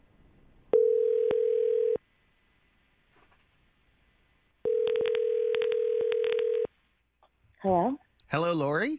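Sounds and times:
telephone line ringing tone as a call is placed: 0.7s - 2.0s, 4.6s - 6.7s
speech: 8.3s - 8.9s.

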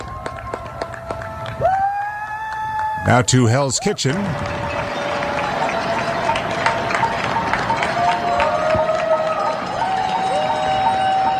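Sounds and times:
steady rhythmic clapping or banging echoing across a street in downtown Manhattan: 0.0s - 1.8s, 4.0s - 11.3s
many people cheering across rooftops in Hell's Kitchen, Manhattan, New York: 0.0s - 11.3s
speech: 3.1s - 4.7s
long whistle-like tones rising out of the crowd: 4.3s - 11.3s.

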